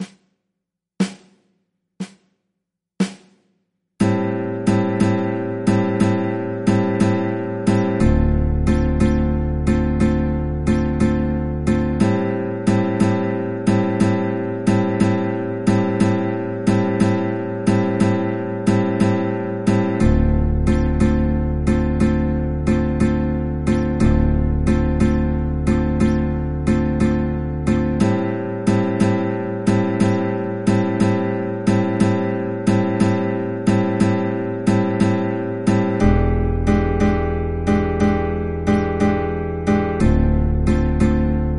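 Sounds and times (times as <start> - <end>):
guitar playing 12 bar slow blues chord progressions in A minor: 4.0 - 41.5.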